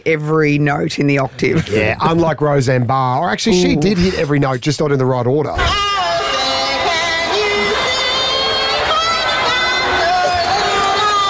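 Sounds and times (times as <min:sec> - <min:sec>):
speech: 0:00.0 - 0:05.9
large crowd booing a singer: 0:05.7 - 0:11.2.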